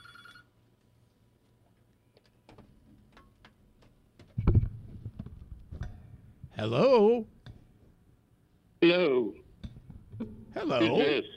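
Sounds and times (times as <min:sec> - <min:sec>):
telephone ringing: 0:00.0 - 0:00.6
speech: 0:06.6 - 0:07.3, 0:08.9 - 0:09.4, 0:10.6 - 0:11.3.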